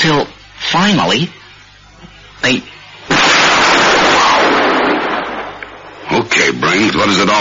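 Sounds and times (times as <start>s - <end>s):
speech: 0.8s - 1.4s, 2.4s - 2.7s, 6.8s - 7.3s
chemical reaction explosion in test tubes with hissing rumble: 3.1s - 6.0s.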